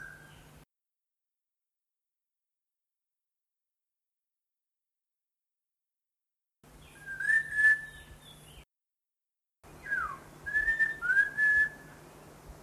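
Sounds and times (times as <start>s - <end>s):
bird whistling pure drawn-out notes in Papua New Guinea: 0.0s - 0.4s, 6.8s - 8.1s, 9.8s - 12.0s
low steady hum: 9.7s - 12.6s.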